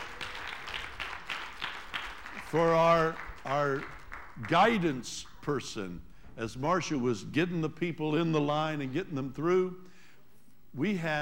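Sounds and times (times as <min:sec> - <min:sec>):
audience applauding: 0:00.0 - 0:05.4
speech: 0:02.5 - 0:09.9, 0:10.8 - 0:11.2.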